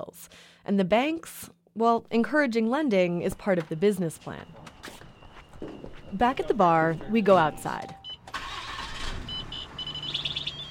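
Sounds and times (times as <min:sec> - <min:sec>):
speech: 0:00.1 - 0:05.0, 0:06.1 - 0:08.0
pickup truck engine cranking, starting and idling: 0:08.0 - 0:10.6.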